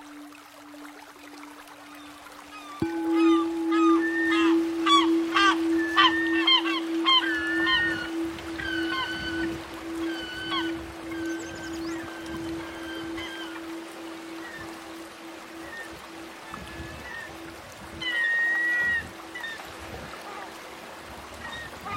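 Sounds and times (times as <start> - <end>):
seagulls calling over a beach: 2.4 - 19.6
steady low hum: 2.8 - 16.5
rough rushing wash: 2.8 - 18.0.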